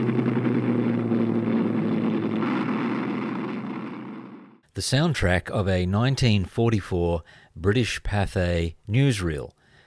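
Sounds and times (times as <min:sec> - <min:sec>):
Avro Lancaster bomber engines droning overhead taking off for a night raid: 0:00.0 - 0:04.6
speech: 0:04.8 - 0:09.6.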